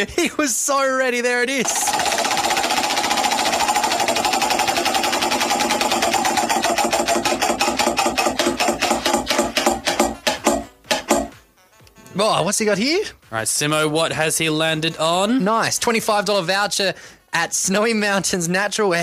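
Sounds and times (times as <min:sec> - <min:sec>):
speech: 0:00.0 - 0:02.5, 0:12.2 - 0:19.0
hand-spun prize wheel clicking: 0:01.6 - 0:11.4.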